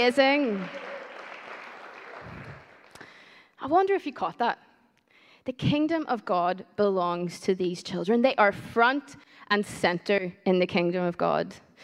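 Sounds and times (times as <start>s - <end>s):
speech: 0.0s - 0.8s, 3.6s - 4.6s, 5.4s - 11.8s
crowd applauding for a female performer: 0.0s - 3.2s.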